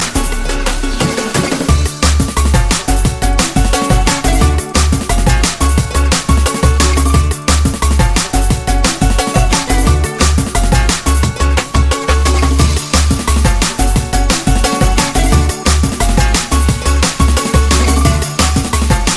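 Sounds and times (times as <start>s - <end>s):
drum and bass ringtone: 0.0s - 19.1s.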